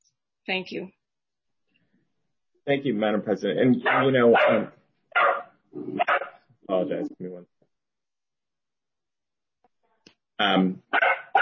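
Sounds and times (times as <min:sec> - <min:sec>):
speech: 0:00.5 - 0:01.0, 0:02.6 - 0:04.8, 0:05.7 - 0:07.5, 0:10.4 - 0:11.2
dog barking: 0:03.8 - 0:06.4, 0:10.9 - 0:11.4.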